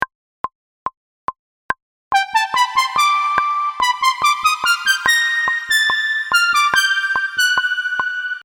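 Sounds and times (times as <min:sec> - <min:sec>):
synth lead note C: 0:02.2 - 0:08.4.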